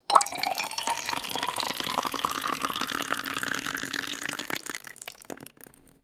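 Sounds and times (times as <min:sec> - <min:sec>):
water pouring into a glass: 0:00.0 - 0:06.0.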